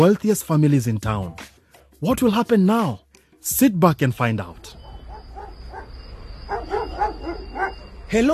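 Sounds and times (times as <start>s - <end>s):
speech: 0.0s - 4.8s, 7.6s - 8.3s
dogs barking behind a gate: 4.7s - 8.1s.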